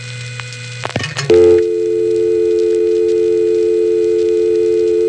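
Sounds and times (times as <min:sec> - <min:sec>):
harsh bursts of telephone line noise: 0:00.9 - 0:05.0.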